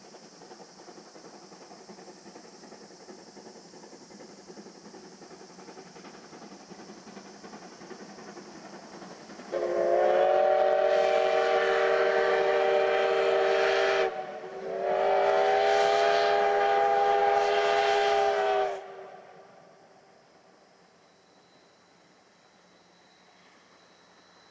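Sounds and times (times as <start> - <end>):
low running rumble of a double-headed steam train: 0.0 - 24.5
double-headed steam train whistle blasts: 9.5 - 19.5.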